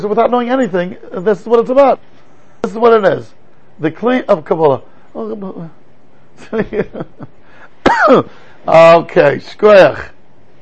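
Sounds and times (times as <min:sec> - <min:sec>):
speech: 0:00.0 - 0:05.8, 0:06.4 - 0:10.1
person coughing: 0:07.8 - 0:08.3.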